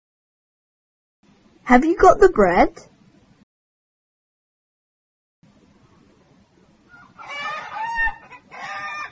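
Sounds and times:
speech: 0:01.7 - 0:02.9
hungry ducks quacking: 0:06.9 - 0:09.0.

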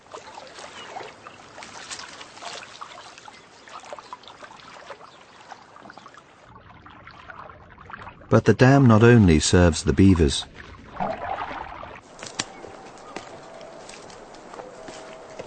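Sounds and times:
water trickling and gurgling: 0:00.0 - 0:08.4, 0:10.5 - 0:12.1
speech: 0:08.3 - 0:10.5.

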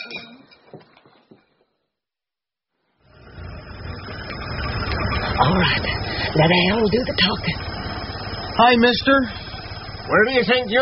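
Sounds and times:
truck engine rumbling while backing up to a door: 0:03.0 - 0:10.8
speech: 0:05.4 - 0:07.7, 0:08.6 - 0:09.4, 0:10.1 - 0:10.8.

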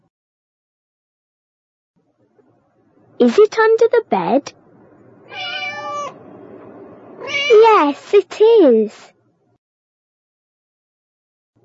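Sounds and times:
speech: 0:03.2 - 0:04.6, 0:07.3 - 0:09.1
cat meowing: 0:05.2 - 0:06.2, 0:07.2 - 0:07.6.

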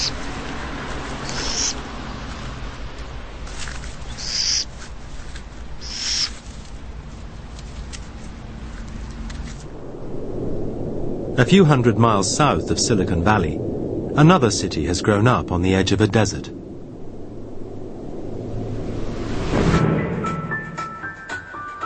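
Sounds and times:
city owl calling with short high-pitched cries: 0:00.0 - 0:00.4, 0:01.1 - 0:01.9, 0:04.0 - 0:04.8, 0:05.7 - 0:06.5
low steady rumble: 0:00.0 - 0:20.2
speech: 0:11.4 - 0:16.6.

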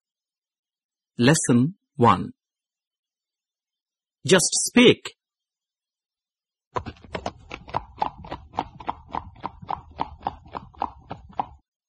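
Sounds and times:
speech: 0:01.2 - 0:02.4, 0:04.2 - 0:05.2, 0:06.8 - 0:07.1
horse hooves clip-clopping: 0:06.8 - 0:11.6.

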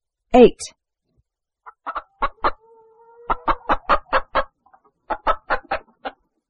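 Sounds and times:
speech: 0:00.4 - 0:00.8
hen clucking: 0:01.6 - 0:06.4.

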